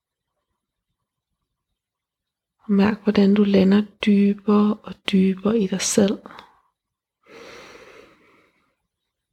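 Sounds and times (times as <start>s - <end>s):
speech: 2.6s - 6.5s
slow deep breathing in and out: 7.2s - 8.8s.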